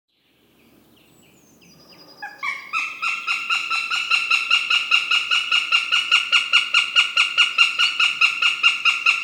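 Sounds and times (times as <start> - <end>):
northern goshawk giving rapid harsh nasal notes: 2.2 - 9.2.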